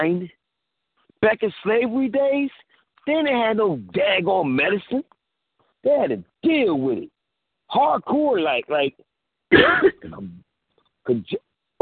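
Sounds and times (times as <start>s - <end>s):
speech: 0.0s - 0.4s, 1.2s - 5.1s, 5.8s - 7.1s, 7.7s - 10.4s, 11.1s - 11.8s
person coughing over a telephone line: 9.5s - 10.3s
rasping throat clearing over a telephone line: 9.5s - 10.4s.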